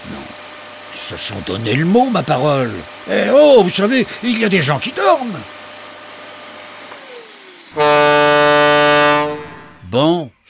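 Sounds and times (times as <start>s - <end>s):
speech: 1.1s - 5.6s, 9.9s - 10.4s
truck horn honking: 7.8s - 9.8s.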